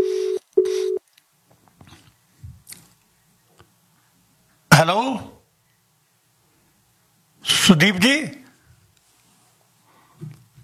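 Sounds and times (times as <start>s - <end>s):
telephone ringback tone while a call is being dialed: 0.0s - 1.0s
speech: 4.8s - 5.4s, 7.7s - 8.4s.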